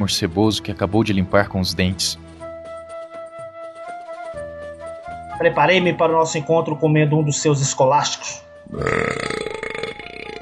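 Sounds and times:
speech: 0:00.0 - 0:02.3, 0:05.4 - 0:09.5
long loud burp: 0:08.6 - 0:10.4.

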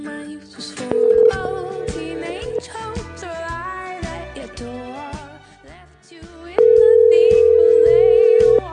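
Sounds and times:
singing or music: 0:00.0 - 0:08.7
telephone dial tone from a phone knocked off the receiver: 0:00.9 - 0:02.6, 0:06.6 - 0:08.7.

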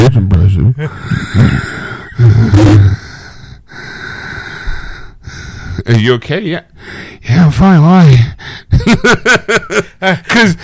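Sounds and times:
speech: 0:00.1 - 0:02.7, 0:05.9 - 0:10.6
heavy effortful breathing while sitting up: 0:00.8 - 0:05.9, 0:06.7 - 0:07.3, 0:08.3 - 0:08.8
laughter: 0:08.8 - 0:10.6.

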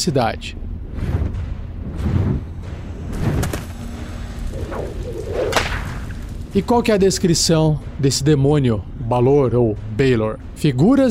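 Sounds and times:
speech: 0:00.0 - 0:01.1, 0:06.5 - 0:11.0
low rumbling undertone: 0:00.6 - 0:09.0
whip swishing whoosh: 0:00.9 - 0:06.9
whip cracks: 0:04.5 - 0:06.6.

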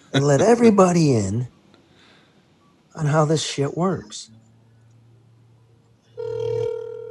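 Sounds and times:
speech: 0:00.1 - 0:01.6, 0:03.0 - 0:04.4
telephone ringing on a call to a governor's press office: 0:06.2 - 0:07.0.

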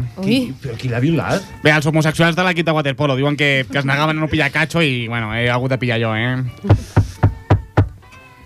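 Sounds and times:
speech: 0:00.2 - 0:07.1
firm knocks on a wooden door: 0:06.7 - 0:08.0.

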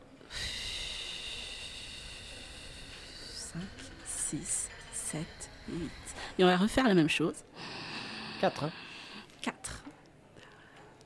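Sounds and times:
slow deep breath during a guided breathing exercise: 0:00.0 - 0:06.8, 0:07.4 - 0:09.4
speech: 0:03.6 - 0:07.5, 0:08.4 - 0:08.8.

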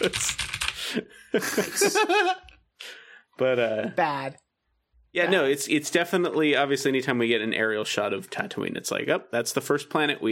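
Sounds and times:
computer keyboard clacking: 0:00.0 - 0:00.8
speech: 0:00.0 - 0:04.4, 0:05.2 - 0:10.3
laughter: 0:00.8 - 0:02.5.

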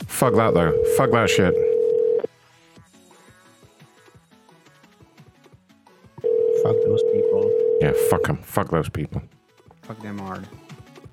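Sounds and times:
speech: 0:00.2 - 0:01.7, 0:08.0 - 0:10.7
telephone dial tone: 0:00.4 - 0:02.3, 0:06.2 - 0:08.2.

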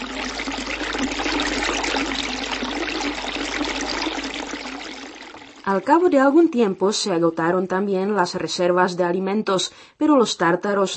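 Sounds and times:
water gushing from a spring: 0:00.0 - 0:05.7
speech: 0:05.7 - 0:10.9.

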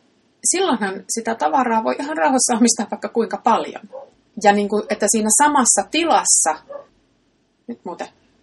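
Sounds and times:
speech: 0:00.4 - 0:06.9, 0:07.7 - 0:08.2
bark of a neighbor's dog behind a wall: 0:03.9 - 0:04.1, 0:06.6 - 0:06.9.

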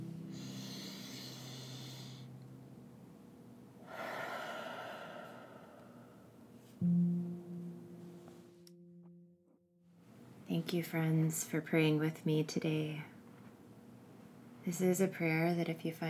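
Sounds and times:
deep breaths during a guided prayer: 0:00.3 - 0:02.4, 0:03.8 - 0:06.5
speech: 0:10.5 - 0:13.1, 0:14.7 - 0:16.0.

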